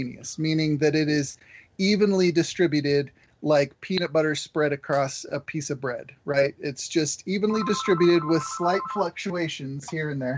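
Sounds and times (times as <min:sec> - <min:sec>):
speech: 0:00.0 - 0:10.3
mobile phone ringing: 0:07.6 - 0:09.2.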